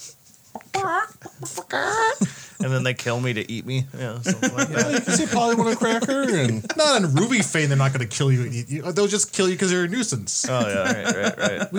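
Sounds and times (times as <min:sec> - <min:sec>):
person imitating chicken clucking and squawking: 0:00.5 - 0:02.3
laughter: 0:00.8 - 0:03.0, 0:04.0 - 0:08.3, 0:10.2 - 0:11.7
speech: 0:00.8 - 0:11.7.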